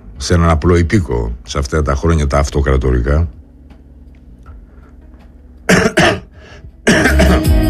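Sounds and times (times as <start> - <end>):
speech: 0.2 - 3.4
person coughing: 5.7 - 7.6.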